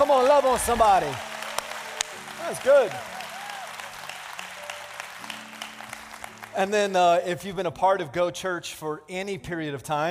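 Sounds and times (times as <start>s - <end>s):
church audience clapping: 0.0s - 7.2s
speech: 0.1s - 1.3s, 2.5s - 3.1s, 6.6s - 10.0s.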